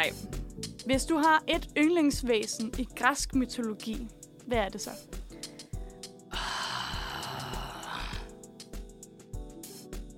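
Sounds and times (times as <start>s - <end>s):
speech: 0.0s - 5.2s
person giving a drawn-out thoughtful grunt: 6.3s - 8.4s.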